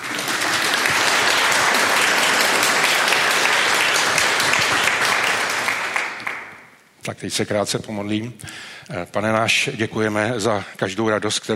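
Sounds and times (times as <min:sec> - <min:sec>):
audience applauding: 0:00.0 - 0:06.7
speech: 0:07.1 - 0:11.5.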